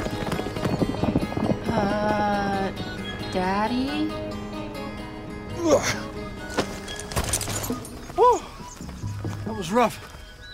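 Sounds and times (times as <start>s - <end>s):
hooves of a fast-ridden horse clip-clopping: 0.0s - 3.2s, 6.4s - 10.5s
speech: 1.8s - 2.8s, 3.4s - 4.2s, 5.6s - 6.0s, 9.6s - 10.1s.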